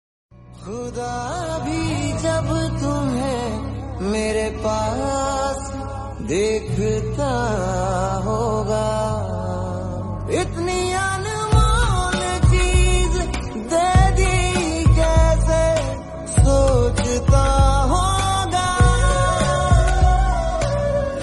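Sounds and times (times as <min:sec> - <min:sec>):
romantic Hindi music: 0:00.3 - 0:21.2.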